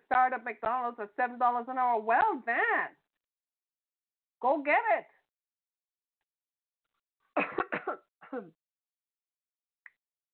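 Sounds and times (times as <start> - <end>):
speech: 0.2 - 3.0, 4.4 - 5.2, 7.9 - 8.6
person clearing throat: 7.4 - 8.5
person coughing: 7.4 - 8.5.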